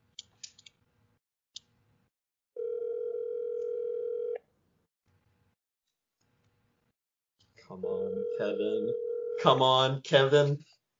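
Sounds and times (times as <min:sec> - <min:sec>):
telephone ringback tone: 0:02.6 - 0:04.4, 0:07.9 - 0:09.4
speech: 0:07.7 - 0:10.7.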